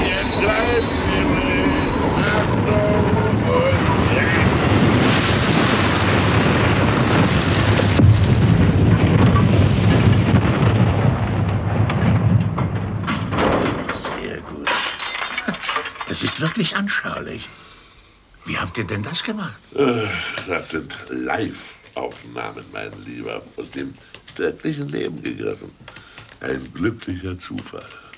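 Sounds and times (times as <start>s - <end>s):
high metallic wheel squeals of rail cars: 0.0s - 4.9s
running locomotive and rail cars rumbling: 0.0s - 14.7s, 20.6s - 25.8s
speech: 16.6s - 17.7s, 18.7s - 28.0s.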